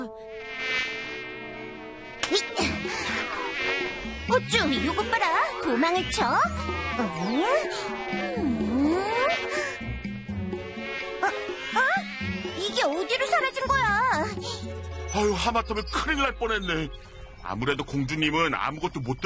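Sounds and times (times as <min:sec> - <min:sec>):
mosquito whining: 0:00.0 - 0:15.0
speech: 0:02.3 - 0:03.1, 0:04.3 - 0:08.4, 0:15.2 - 0:19.2.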